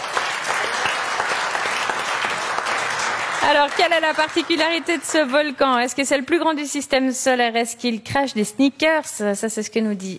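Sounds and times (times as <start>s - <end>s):
audience applause: 0.0s - 5.8s
speech: 3.5s - 10.1s.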